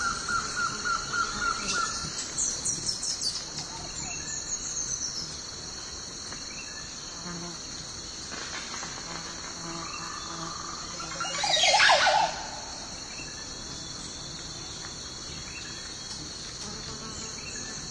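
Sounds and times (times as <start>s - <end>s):
high insect drone in a morning forest: 0.0s - 17.8s
harsh bird call: 11.2s - 12.9s.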